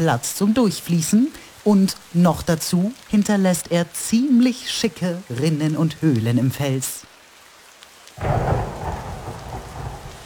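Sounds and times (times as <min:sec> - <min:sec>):
speech: 0:00.0 - 0:07.1
heavy rain pouring: 0:00.0 - 0:10.2
deep rumble of thunder: 0:08.2 - 0:10.2.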